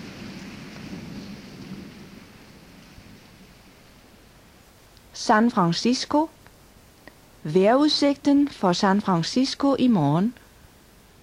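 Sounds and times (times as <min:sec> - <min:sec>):
deep rolling thunder rumble in Melbourne: 0:00.0 - 0:04.9
dense rain during a night thunderstorm in Melbourne: 0:00.0 - 0:11.2
speech: 0:05.2 - 0:06.4, 0:07.4 - 0:10.4.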